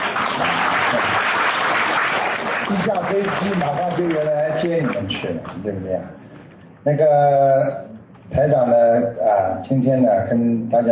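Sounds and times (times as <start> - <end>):
lukewarm audience applause: 0.0 - 5.0
speech: 3.1 - 6.2, 6.8 - 10.9.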